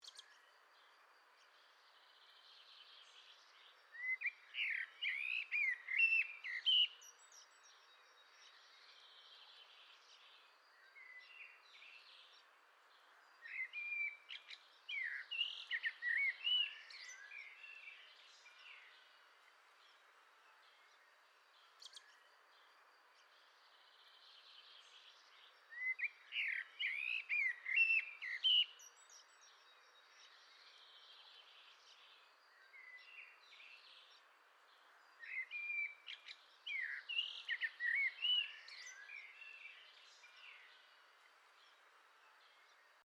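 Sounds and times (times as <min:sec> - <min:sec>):
common blackbird singing: 0:02.2 - 0:09.7, 0:13.4 - 0:19.0, 0:24.2 - 0:34.2, 0:35.2 - 0:40.9.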